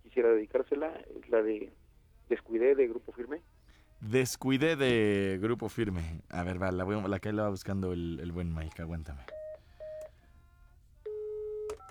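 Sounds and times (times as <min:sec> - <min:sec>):
low hum: 0:00.0 - 0:11.8
speech: 0:00.2 - 0:09.4
telephone dialing tones: 0:09.2 - 0:10.1, 0:11.1 - 0:11.8.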